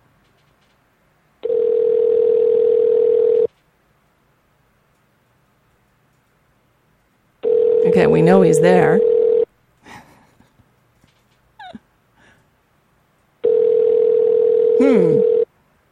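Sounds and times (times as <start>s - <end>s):
telephone dial tone after hanging up a call: 1.4s - 3.5s, 7.4s - 8.0s, 9.0s - 9.5s, 13.4s - 15.5s
speech: 8.0s - 9.1s
faint breaths: 12.2s - 12.6s.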